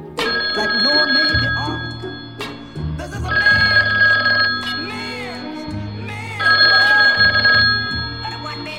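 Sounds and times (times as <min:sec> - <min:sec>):
telephone ringing loudly: 0:00.2 - 0:08.7
voices: 0:00.2 - 0:08.7.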